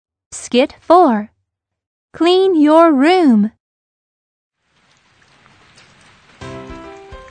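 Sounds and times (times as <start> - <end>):
speech: 0.3 - 1.3, 2.1 - 3.6
steady rain falling: 4.6 - 7.2.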